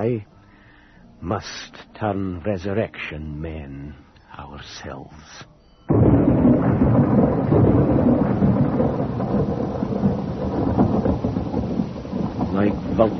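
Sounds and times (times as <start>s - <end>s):
speech: 0.0s - 0.4s, 1.2s - 7.6s, 12.6s - 13.1s
deep rolling thunder: 5.9s - 13.1s
heavy rain: 5.9s - 13.1s.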